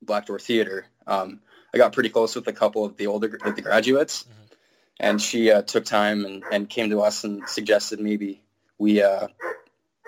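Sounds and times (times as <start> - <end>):
speech: 0.1 - 4.4, 5.0 - 9.6
big dog barking: 3.4 - 3.8, 6.4 - 6.7, 9.4 - 10.0.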